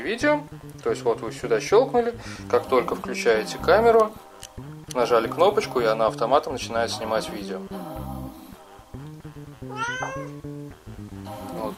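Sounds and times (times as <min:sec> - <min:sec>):
speech: 0:00.0 - 0:07.9
cat yowling loudly: 0:09.7 - 0:10.4.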